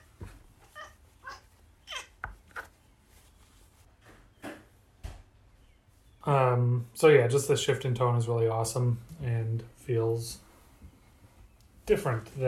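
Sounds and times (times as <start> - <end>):
cat meowing: 0.7 - 2.1
speech: 6.3 - 10.5, 11.9 - 12.4.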